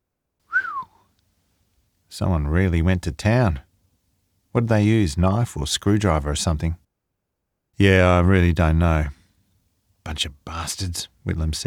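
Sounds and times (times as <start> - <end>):
short low sympathetic whistle from a man: 0.5 - 1.0
speech: 2.2 - 3.7, 4.5 - 6.8, 7.8 - 9.2, 10.0 - 11.6.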